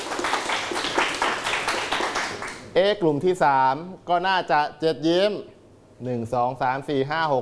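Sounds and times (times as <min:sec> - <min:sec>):
group of people clapping hands during a counting game: 0:00.0 - 0:02.7
speech: 0:02.8 - 0:07.3.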